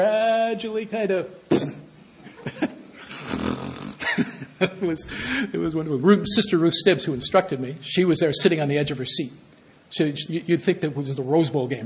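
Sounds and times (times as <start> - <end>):
speech: 0.0 - 1.8, 4.2 - 11.8
voice imitating snoring: 3.0 - 4.0.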